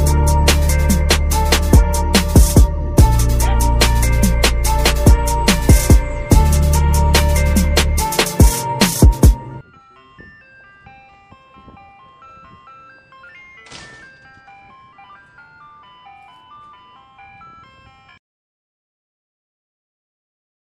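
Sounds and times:
heavy punchy beats: 0:00.0 - 0:09.5
ice cream truck jingle: 0:00.0 - 0:18.2.

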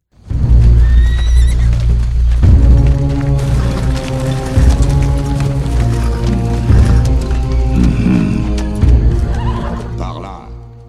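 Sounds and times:
ominous requiem-like orchestral theme: 0:00.2 - 0:10.8.

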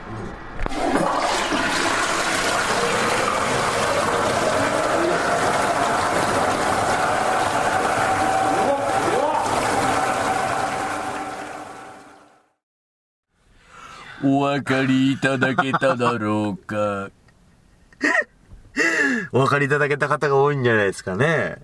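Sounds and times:
loud roaring toilet flush: 0:00.6 - 0:12.5
speech: 0:14.3 - 0:17.2, 0:19.3 - 0:21.6
laughter: 0:15.0 - 0:16.2.

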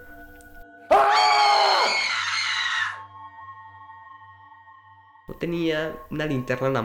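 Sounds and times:
person screaming in the neighbours' house during a torrential storm: 0:00.9 - 0:03.0
speech: 0:05.4 - 0:06.8.

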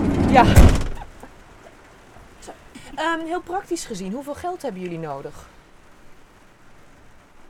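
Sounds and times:
heavy thud of a door being shut: 0:00.0 - 0:01.1
steady rain: 0:00.0 - 0:07.4
speech: 0:00.3 - 0:00.8, 0:03.0 - 0:05.6.

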